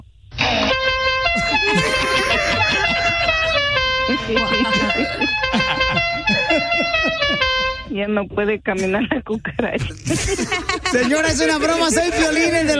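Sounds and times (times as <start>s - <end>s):
loud brassy melody horn on a wheelchair blaring stepping tones: 0.4s - 7.9s
laughter: 1.3s - 7.8s, 9.7s - 12.7s
speech: 8.0s - 12.7s.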